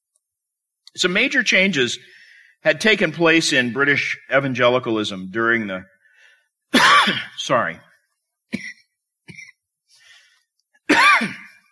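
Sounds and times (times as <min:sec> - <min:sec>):
speech: 0:01.0 - 0:05.9, 0:06.8 - 0:07.9
man coughing during a sermon: 0:06.7 - 0:07.4, 0:08.5 - 0:09.6, 0:10.9 - 0:11.6.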